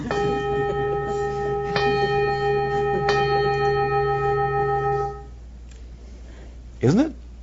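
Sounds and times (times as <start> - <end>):
bell ringing with a sustained shimmering tone: 0.0 - 5.4
speech: 6.8 - 7.2.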